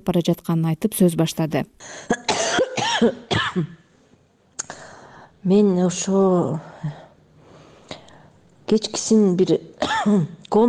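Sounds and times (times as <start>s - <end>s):
speech: 0.0s - 3.8s, 5.4s - 7.0s, 8.7s - 10.6s
person ill with bronchitis coughing hard: 2.1s - 3.8s, 9.8s - 10.3s.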